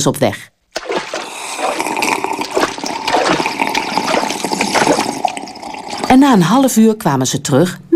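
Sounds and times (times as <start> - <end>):
speech: 0.0 - 0.5, 6.1 - 7.9
water gurgling and rushing as the sea is drunk: 0.7 - 6.3.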